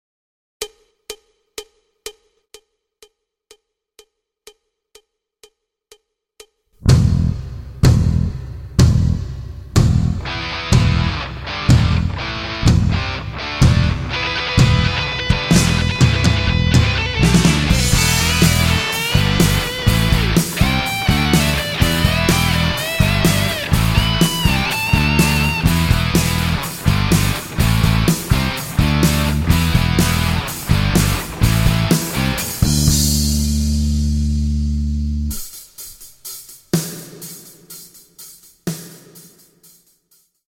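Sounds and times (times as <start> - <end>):
hard rock music: 6.9 - 35.5.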